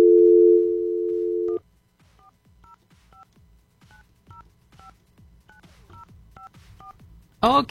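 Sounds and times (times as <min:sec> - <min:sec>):
telephone dial tone: 0:00.0 - 0:01.6
speech: 0:07.4 - 0:07.6.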